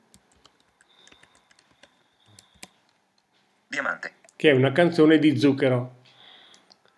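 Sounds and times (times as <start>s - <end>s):
typing on a computer keyboard: 0.0s - 3.0s
speech: 3.8s - 6.0s.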